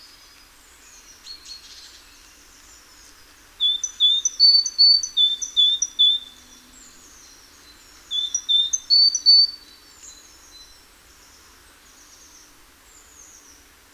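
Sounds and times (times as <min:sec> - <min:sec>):
great tit, Parus major, singing two-note whistled phrases: 0:03.6 - 0:07.3, 0:08.0 - 0:09.6.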